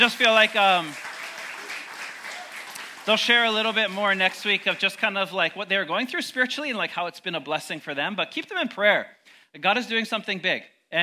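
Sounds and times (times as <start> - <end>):
speech: 0.0 - 1.1, 3.1 - 11.0
audience applause: 0.0 - 5.3.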